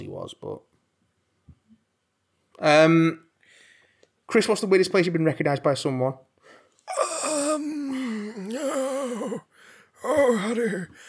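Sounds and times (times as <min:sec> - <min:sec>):
speech: 0:00.0 - 0:00.7, 0:02.6 - 0:03.2, 0:04.3 - 0:07.0, 0:10.0 - 0:11.0
person raspy voiced exhale: 0:06.4 - 0:10.0.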